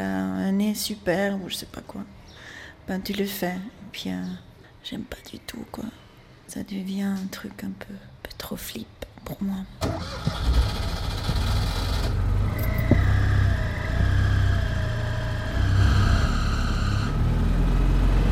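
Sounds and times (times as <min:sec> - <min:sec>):
speech: 0:00.7 - 0:11.5
higher whine of a car shifting speed: 0:11.3 - 0:18.3.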